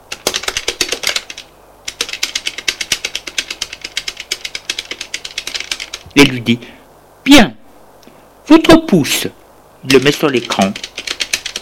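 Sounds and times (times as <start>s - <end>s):
typing on a computer keyboard: 0.1s - 6.0s, 9.9s - 11.6s
speech: 6.1s - 7.6s, 8.5s - 10.9s.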